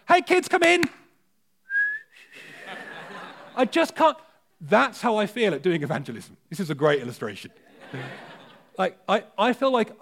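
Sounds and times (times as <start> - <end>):
speech: 0.2 - 1.0, 3.6 - 10.0
feeble failed whistle with breathy hissing: 1.6 - 2.4
laughter: 2.4 - 3.8, 7.6 - 8.8.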